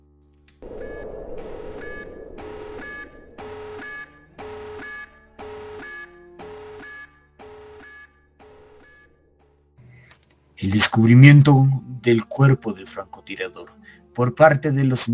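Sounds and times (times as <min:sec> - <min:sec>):
low rumble: 0:00.6 - 0:05.4
electronic alarm blaring in harsh buzzy pulses: 0:00.6 - 0:08.1
speech: 0:10.6 - 0:15.1.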